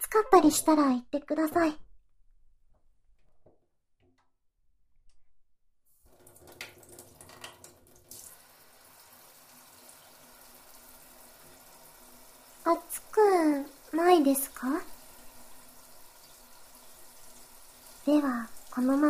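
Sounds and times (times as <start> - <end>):
speech: 0.1 - 1.9, 14.2 - 14.9, 18.1 - 19.0
shower water rushing: 6.1 - 19.0.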